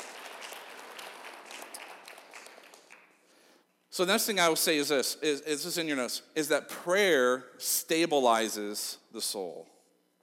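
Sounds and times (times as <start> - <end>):
crowd applauding: 0.0 - 3.4
speech: 4.0 - 9.7.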